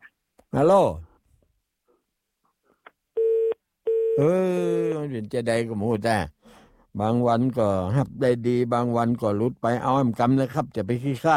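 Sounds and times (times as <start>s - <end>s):
speech: 0.5s - 1.1s, 4.2s - 11.3s
low telephone call signal tone: 3.2s - 4.3s.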